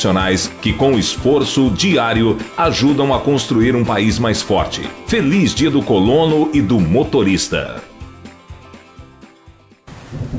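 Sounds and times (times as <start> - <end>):
speech: 0.0 - 7.9
short rhythmic musical passage: 0.0 - 9.7
loud deep rumble of thunder: 10.1 - 10.3.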